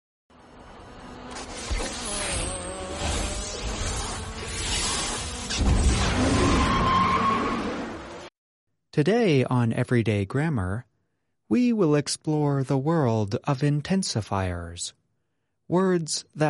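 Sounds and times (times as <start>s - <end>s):
racing car engine accelerating hard: 0.3s - 8.2s
racing car tires screeching: 0.4s - 8.3s
speech: 9.0s - 10.9s, 11.5s - 15.0s, 15.7s - 16.4s.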